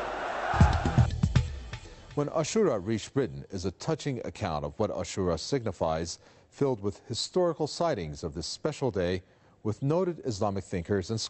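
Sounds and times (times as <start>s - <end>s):
large crowd chanting a slogan in unison: 0.0s - 1.1s
speech: 2.2s - 11.2s.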